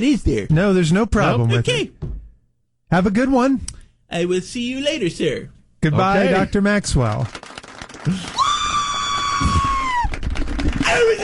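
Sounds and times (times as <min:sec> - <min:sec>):
speech: 0:00.0 - 0:02.0, 0:02.9 - 0:08.4
loud high-pitched scream: 0:08.4 - 0:10.1.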